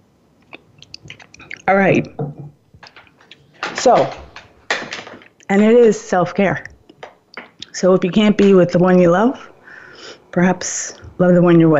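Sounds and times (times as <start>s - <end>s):
person sipping a drink: 0.4s - 1.7s
soft wet mouth clicks: 0.4s - 1.7s
speech: 1.0s - 2.3s, 3.8s - 4.3s, 5.5s - 6.7s, 7.8s - 11.7s.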